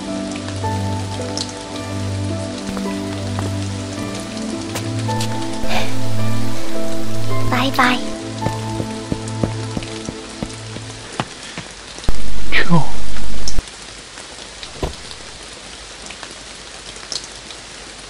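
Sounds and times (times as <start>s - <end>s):
low tonal music: 0.0s - 11.3s
rain falling on a surface: 0.0s - 12.4s, 13.2s - 18.0s
person speaking quietly: 7.5s - 8.1s
speech: 7.6s - 8.1s.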